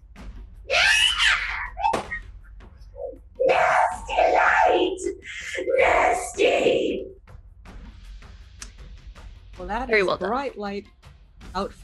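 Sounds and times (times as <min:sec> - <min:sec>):
voice imitating a creature's agonized screech: 0:00.7 - 0:02.2, 0:03.0 - 0:07.1
speech: 0:09.7 - 0:11.0, 0:11.6 - 0:11.8.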